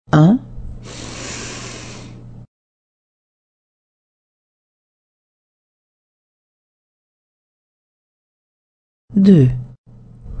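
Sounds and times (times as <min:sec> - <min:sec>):
speech: 0:00.1 - 0:01.0, 0:09.2 - 0:09.6
deep inhale and exhale: 0:00.8 - 0:02.2.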